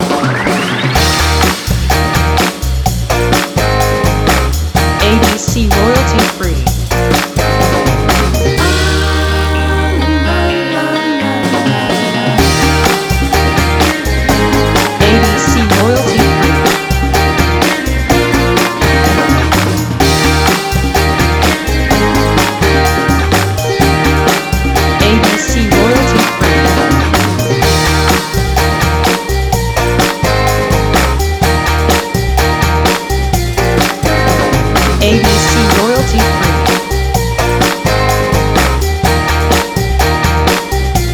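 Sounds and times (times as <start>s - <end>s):
upbeat indie pop rock music: 0.0s - 41.1s.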